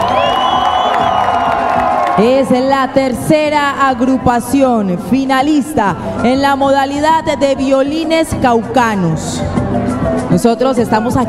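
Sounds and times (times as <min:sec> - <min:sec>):
crowd cheering and whooping for a finalist violin group at a folk music contest: 0:00.0 - 0:02.6
speech: 0:02.2 - 0:11.2.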